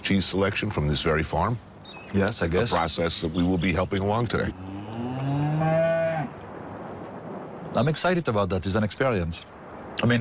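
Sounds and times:
speech: 0:00.1 - 0:04.7, 0:07.8 - 0:10.1
cow mooing on a farm: 0:04.6 - 0:06.4.

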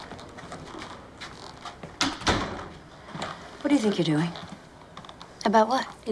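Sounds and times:
office door being pushed shut: 0:02.0 - 0:02.8
speech: 0:03.6 - 0:04.5, 0:05.5 - 0:06.1.

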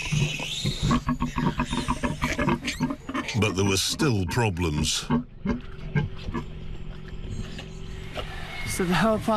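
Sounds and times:
sow grunting and snuffling after giving birth to a piglet: 0:00.0 - 0:06.5
speech: 0:03.4 - 0:05.3, 0:08.8 - 0:09.3.

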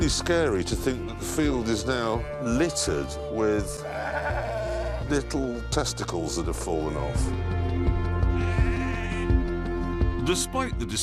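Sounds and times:
speech: 0:00.0 - 0:04.4, 0:05.1 - 0:07.6, 0:10.3 - 0:11.0
lambs bleating on a farm in springtime: 0:01.8 - 0:02.7, 0:03.5 - 0:05.2, 0:08.3 - 0:09.4.

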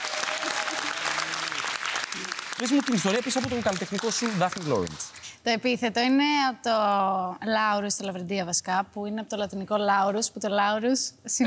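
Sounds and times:
audience applause: 0:00.0 - 0:05.2
speech: 0:02.2 - 0:11.4.

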